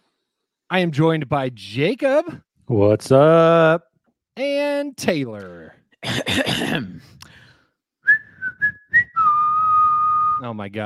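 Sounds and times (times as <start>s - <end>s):
speech: 0.7s - 7.2s, 10.4s - 10.8s
person whistling a sports broadcast theme tune: 8.0s - 10.4s.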